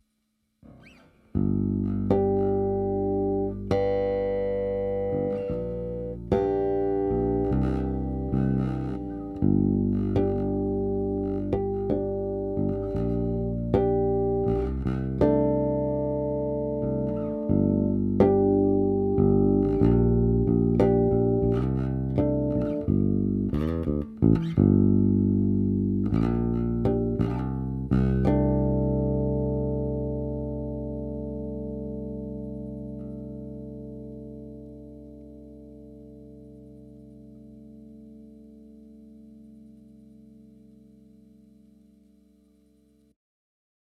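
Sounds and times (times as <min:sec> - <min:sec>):
long harmonics: 0:00.6 - 0:42.7.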